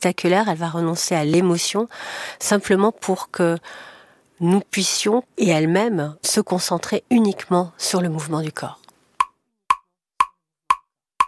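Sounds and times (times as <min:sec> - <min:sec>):
speech: 0:00.0 - 0:08.8
metronome ticking for dance choreography: 0:09.2 - 0:11.2.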